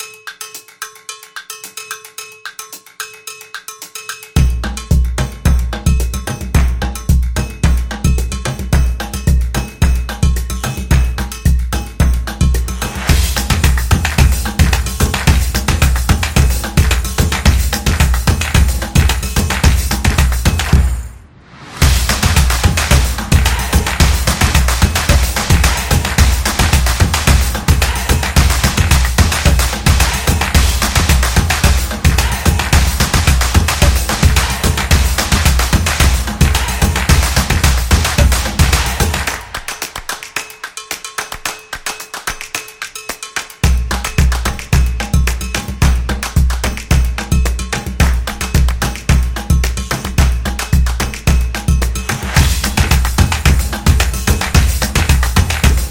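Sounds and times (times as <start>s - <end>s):
clap: 0.0s - 55.8s
drum: 4.4s - 40.1s, 43.6s - 55.8s.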